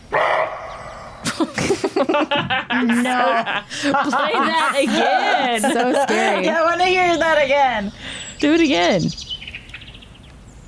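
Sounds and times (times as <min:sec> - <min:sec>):
deer barking: 0:00.1 - 0:01.2
laughter: 0:01.2 - 0:07.1
speech: 0:02.2 - 0:09.2.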